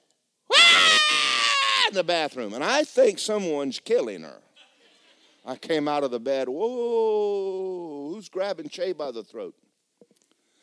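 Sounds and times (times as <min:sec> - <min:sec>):
voice imitating a girl's high-pitched scream of excitement: 0:00.5 - 0:02.0
speech: 0:01.9 - 0:04.5, 0:05.4 - 0:10.1.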